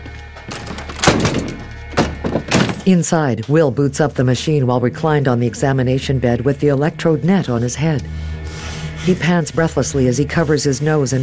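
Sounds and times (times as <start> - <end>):
locked laboratory door thunking against the lock: 0.5 - 3.0
speech: 2.9 - 8.3, 9.0 - 11.2.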